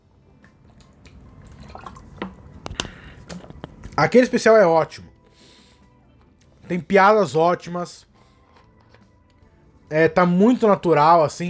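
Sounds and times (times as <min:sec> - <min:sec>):
person taking a small sip of water: 0:00.6 - 0:03.7
speech: 0:04.0 - 0:05.1, 0:06.7 - 0:08.1, 0:09.9 - 0:11.4.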